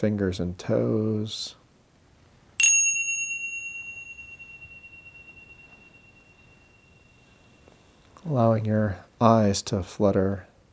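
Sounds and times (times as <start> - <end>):
speech: 0.0 - 1.6, 8.2 - 10.5
bell ringing: 2.6 - 8.0.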